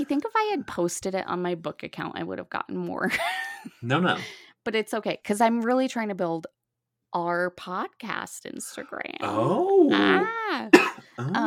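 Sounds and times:
speech: 0.0s - 11.4s
sharp cough: 10.7s - 11.4s.

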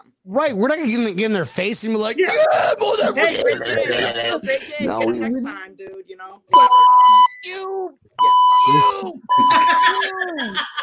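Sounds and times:
speech: 0.3s - 10.8s
laughter: 2.2s - 5.2s, 8.6s - 10.8s
electronic beeping: 6.5s - 7.6s, 8.2s - 10.0s.

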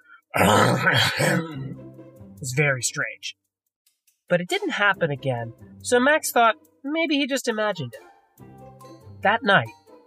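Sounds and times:
person imitating a hen's cough-like growl near a chicken coop: 0.4s - 1.8s
speech: 0.4s - 1.8s, 2.4s - 3.4s, 4.3s - 8.5s, 9.2s - 9.8s.

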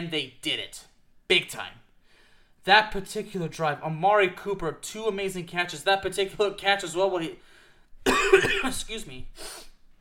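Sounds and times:
speech: 0.0s - 1.8s, 2.6s - 9.7s
faint breath: 2.0s - 2.6s, 7.4s - 7.9s
person coughing from dust in the throat: 8.0s - 8.9s.

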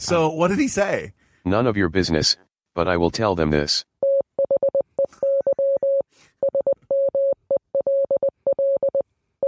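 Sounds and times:
speech: 0.0s - 3.9s
electronic beeps of a Morse code message: 4.0s - 9.4s.

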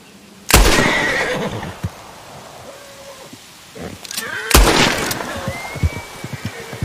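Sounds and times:
horse whinnying: 0.8s - 1.7s, 2.7s - 6.8s.

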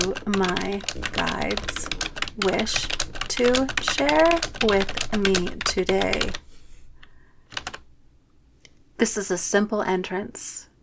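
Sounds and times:
speech: 0.0s - 6.4s, 9.0s - 10.7s
typing on computer keyboard: 0.0s - 6.4s, 7.5s - 7.8s.

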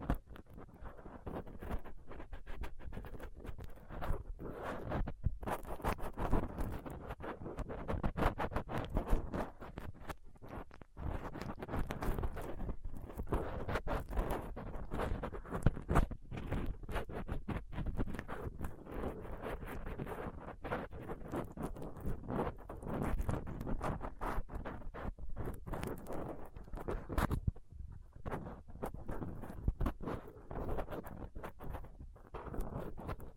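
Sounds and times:
dental pick and tweezers scratching and scraping against a microphone: 0.0s - 33.3s.

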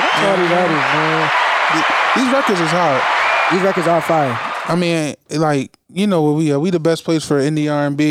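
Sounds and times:
clapping applause: 0.0s - 5.0s
man talking loudly: 0.0s - 8.0s
speech: 0.2s - 8.0s.

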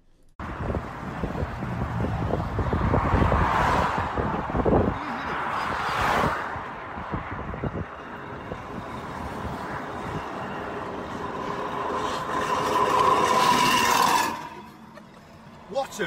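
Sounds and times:
wind buffeting the microphone: 0.4s - 13.0s
car driving past on a missing front tire: 0.5s - 16.0s.

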